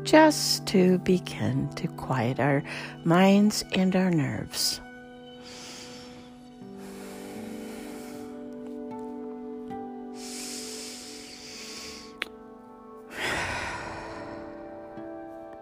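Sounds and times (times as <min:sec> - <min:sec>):
speech: 0:00.0 - 0:04.8
quiet steady musical drone: 0:02.2 - 0:15.4
deep breaths in a guided meditation: 0:05.4 - 0:08.6, 0:10.0 - 0:12.2, 0:13.1 - 0:15.0.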